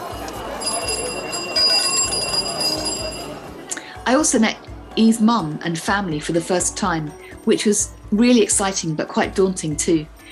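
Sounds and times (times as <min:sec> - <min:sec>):
bicycle bells ringing in Beijing street: 0:00.0 - 0:03.6
speech: 0:04.1 - 0:10.3.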